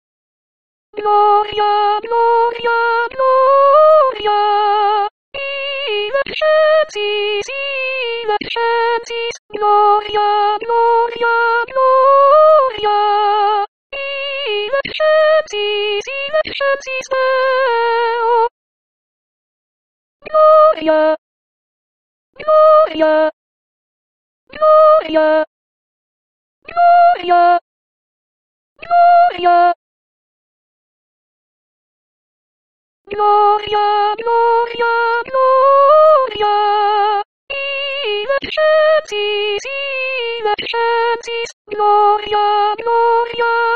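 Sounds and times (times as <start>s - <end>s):
soprano singing: 1.0s - 18.5s, 20.3s - 21.2s, 22.4s - 23.3s, 24.6s - 25.4s, 26.7s - 27.6s, 33.1s - 43.7s.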